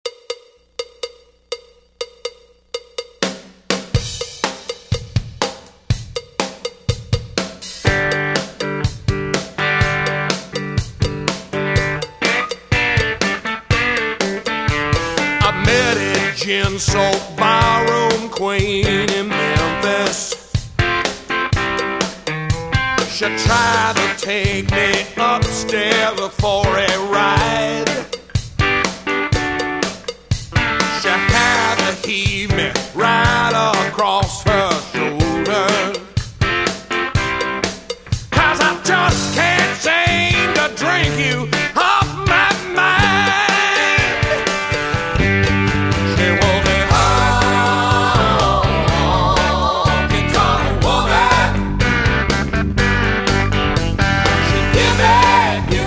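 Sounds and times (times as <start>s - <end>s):
classic rock cover band playing: 3.2s - 55.8s.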